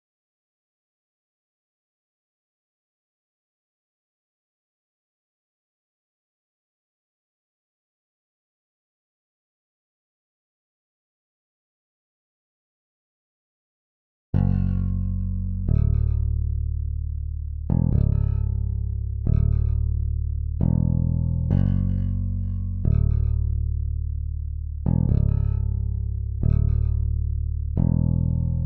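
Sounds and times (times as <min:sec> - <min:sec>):
bass in F sharp minor: 0:14.4 - 0:28.6.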